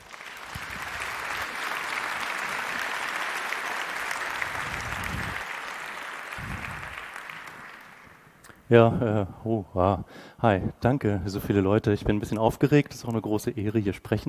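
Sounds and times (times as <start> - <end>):
large audience applauding at a talk: 0.0 - 8.4
speech: 8.7 - 14.2.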